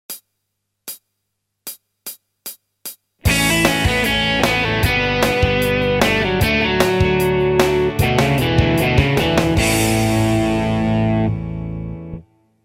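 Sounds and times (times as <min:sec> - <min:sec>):
classic rock guitar solo: 0:03.2 - 0:12.2.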